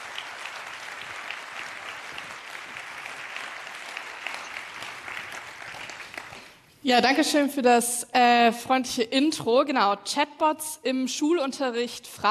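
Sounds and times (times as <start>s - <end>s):
audience applause welcoming two speakers to a talk: 0.0s - 6.6s
speech: 6.8s - 12.2s.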